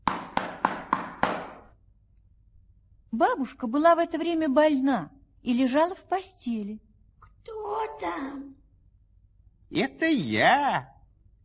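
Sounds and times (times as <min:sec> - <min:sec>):
knocking on a wooden door of a little house: 0:00.0 - 0:01.7
speech: 0:03.2 - 0:08.6, 0:09.7 - 0:10.9.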